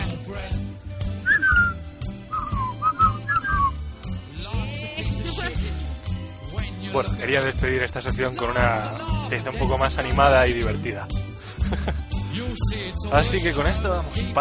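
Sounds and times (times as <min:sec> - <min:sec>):
steady rhythmic musical backing: 0:00.0 - 0:14.3
person whistling a short tune of sliding notes: 0:01.1 - 0:03.8
laughter: 0:04.9 - 0:06.0, 0:08.8 - 0:12.4
speech: 0:07.0 - 0:12.0, 0:12.6 - 0:14.3.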